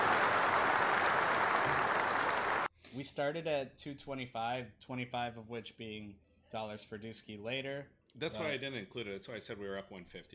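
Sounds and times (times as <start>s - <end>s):
crowd applauding a game: 0.0s - 2.7s
speech: 3.0s - 10.3s.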